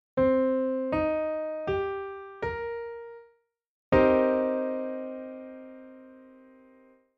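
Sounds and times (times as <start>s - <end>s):
piano minor seventh chord: 0.2s - 3.2s, 4.0s - 7.1s.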